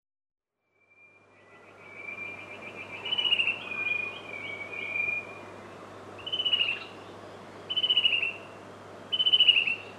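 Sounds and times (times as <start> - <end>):
Chestnut-breasted cuckoo calling in pulsed trills: 0.7 - 5.6, 6.2 - 7.0, 7.7 - 8.5, 9.1 - 9.9
low steady hum: 0.7 - 9.9.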